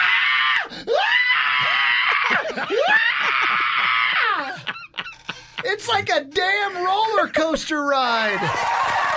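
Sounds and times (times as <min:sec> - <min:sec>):
woman screaming excitedly with high-pitched shrieks: 0:00.0 - 0:04.6
speech: 0:02.6 - 0:04.6, 0:05.6 - 0:09.0.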